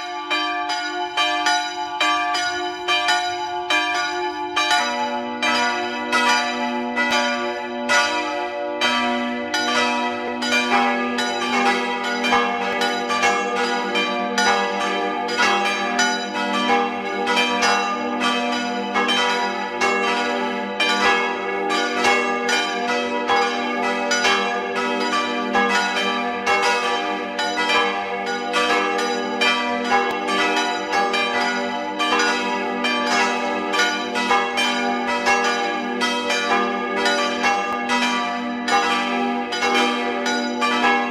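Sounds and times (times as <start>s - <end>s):
parish church bells ringing at noon in Tattendorf Lower Austria: 0.0s - 41.0s.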